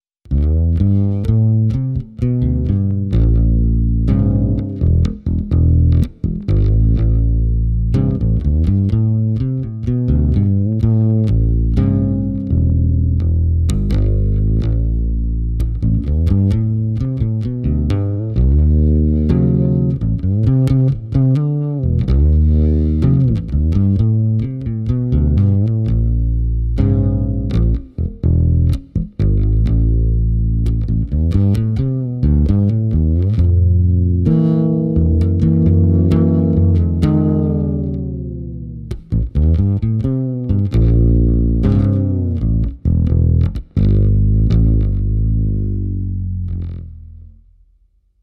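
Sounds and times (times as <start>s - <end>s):
jazz funk music: 0.3s - 47.2s.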